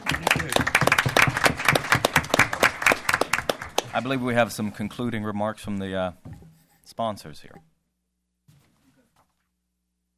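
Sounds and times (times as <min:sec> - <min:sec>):
audience applauding: 0:00.0 - 0:04.5
speech: 0:04.0 - 0:06.3, 0:06.9 - 0:07.7.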